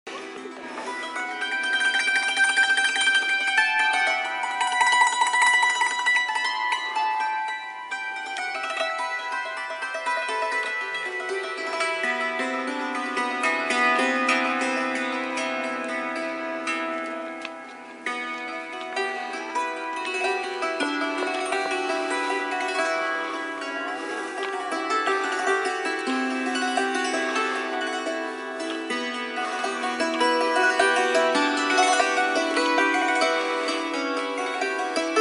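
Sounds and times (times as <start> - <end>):
hammered dulcimer: 0.1 - 35.1.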